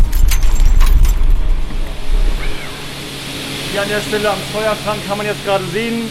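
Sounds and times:
rattles and clanks: 0:00.0 - 0:02.0
faint whine: 0:00.0 - 0:06.1
low machinery rumble inside a running wind turbine: 0:00.0 - 0:06.1
speech: 0:03.8 - 0:06.1.

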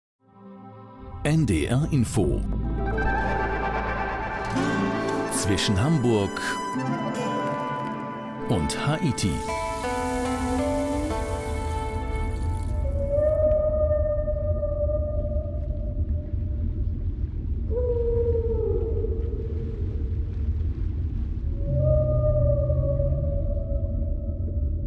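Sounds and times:
speech: 0:01.2 - 0:02.6, 0:05.4 - 0:07.4, 0:08.5 - 0:09.6
gray whale calls underwater on the Pacific coast of British Columbia Canada: 0:02.9 - 0:16.4, 0:17.6 - 0:20.2, 0:21.5 - 0:24.8
steady low rumbling hiss of the sea: 0:08.6 - 0:24.8.

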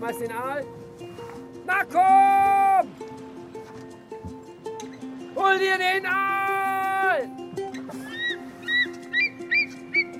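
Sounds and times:
speech: 0:00.0 - 0:02.9, 0:05.4 - 0:06.4
eagle giving sharp high-pitched rising calls: 0:08.0 - 0:10.1.

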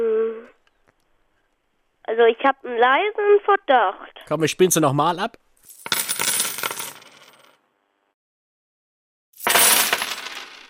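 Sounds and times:
speech: 0:02.1 - 0:05.4
coins clattering and jingling onto a table: 0:05.6 - 0:07.6, 0:09.4 - 0:10.6.

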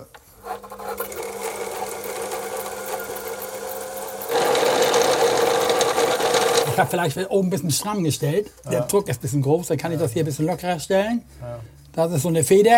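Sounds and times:
winding machine spooling line onto spare spools: 0:00.4 - 0:07.0
speech: 0:06.8 - 0:12.7.

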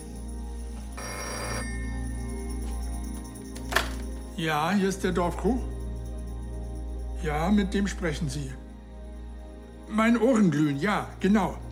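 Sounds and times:
telephone ringing: 0:01.0 - 0:02.7
speech: 0:04.4 - 0:05.8, 0:07.2 - 0:08.6, 0:09.9 - 0:11.7.

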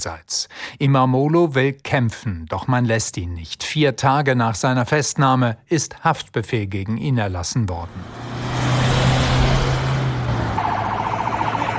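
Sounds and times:
speech: 0:00.0 - 0:08.5
convoy of dozens of cars driving to a high-security prison: 0:07.8 - 0:11.7
rapidly pulsing siren or alarm tone: 0:09.6 - 0:11.7.

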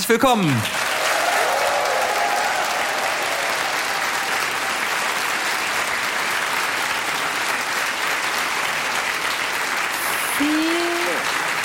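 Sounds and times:
speech: 0:00.1 - 0:00.8
large crowd applauding at a crime-fiction festival in a school auditorium: 0:00.5 - 0:11.6
faint whistles and cheers from an audience: 0:00.9 - 0:04.4.

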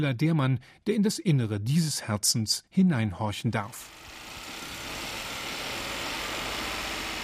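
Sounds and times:
speech: 0:00.0 - 0:04.2
car engine running: 0:03.9 - 0:07.2.

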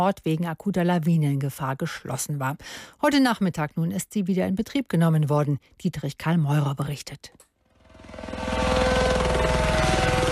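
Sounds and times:
speech: 0:00.0 - 0:07.5
helicopter rotor chopping over a snowed-in ski resort: 0:07.8 - 0:10.3.

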